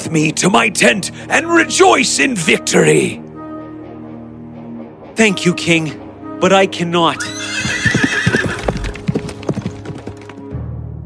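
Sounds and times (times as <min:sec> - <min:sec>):
speech: 0:00.1 - 0:03.2, 0:05.2 - 0:07.9
horse whinnying: 0:07.2 - 0:10.2
horse hooves clip-clopping: 0:07.3 - 0:10.5.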